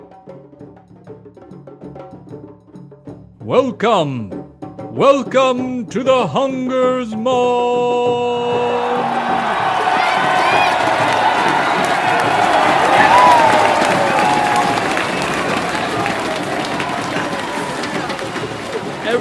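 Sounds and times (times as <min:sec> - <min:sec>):
speech: 0:03.5 - 0:04.4, 0:05.0 - 0:09.4
large crowd roaring and cheering: 0:08.3 - 0:19.2
whoops and shouts from the crowd: 0:08.4 - 0:18.4.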